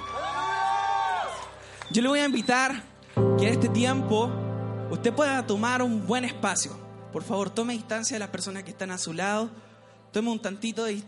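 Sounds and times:
church audience shouting for joy: 0:00.0 - 0:01.6
speech: 0:01.9 - 0:11.0.

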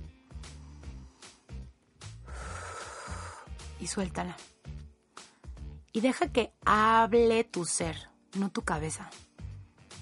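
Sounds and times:
soft rhythmic music: 0:00.0 - 0:10.0
slow deep inhale: 0:00.3 - 0:03.6
speech: 0:03.8 - 0:04.6, 0:06.0 - 0:09.3.

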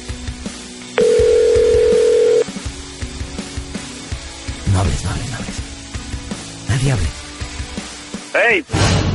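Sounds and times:
phone ringing out while calling someone: 0:01.0 - 0:02.5
speech: 0:06.8 - 0:07.2, 0:08.4 - 0:09.0.

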